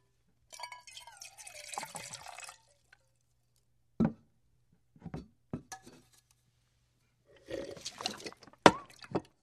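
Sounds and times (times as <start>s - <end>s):
human pouring a drink: 0.5s - 3.7s, 7.4s - 9.3s
human drinking from a cup: 7.4s - 8.9s.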